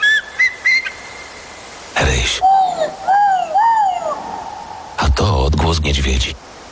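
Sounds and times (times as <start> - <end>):
eagle calling in a Carpathian forest of century-old firs and beeches: 0.0 - 1.3, 2.4 - 5.0
speech: 2.2 - 2.5, 5.7 - 6.5.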